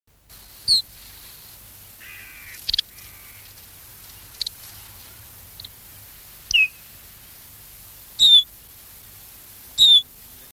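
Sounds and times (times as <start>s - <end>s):
Iberian chiffchaff calls during bird migration: 0.7s - 0.9s, 2.0s - 5.8s, 6.5s - 6.9s, 8.2s - 8.5s, 9.8s - 10.1s.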